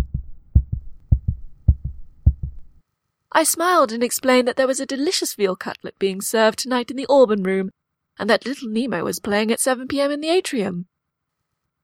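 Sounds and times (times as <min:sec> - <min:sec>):
heartbeat thudding: 0:00.0 - 0:02.8
speech: 0:03.4 - 0:10.9.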